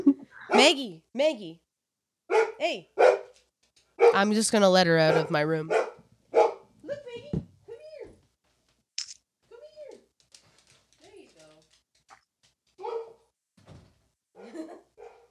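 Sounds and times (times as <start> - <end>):
dog barking at someone at the door: 0.4 - 0.8, 2.3 - 3.4, 4.0 - 4.3, 5.1 - 6.7, 12.8 - 13.3, 14.4 - 15.2
speech: 0.6 - 1.6, 2.3 - 3.2, 4.1 - 5.9
brief thump: 13.6 - 14.0.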